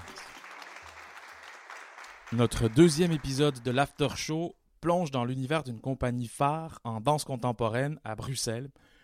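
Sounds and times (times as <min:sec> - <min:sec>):
crowd applauding: 0:00.0 - 0:04.1
speech: 0:02.3 - 0:08.9.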